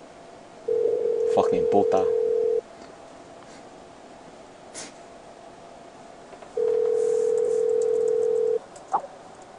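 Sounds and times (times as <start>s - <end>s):
phone call ringing out on Skype: 0.7s - 2.6s, 6.6s - 8.6s
speech: 1.4s - 2.2s.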